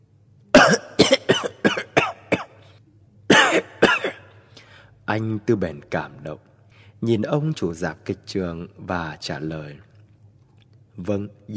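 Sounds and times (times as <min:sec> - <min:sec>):
old man coughing hoarsely: 0:00.5 - 0:02.7, 0:03.3 - 0:04.4
speech: 0:00.6 - 0:01.2, 0:05.1 - 0:09.9, 0:11.0 - 0:11.5.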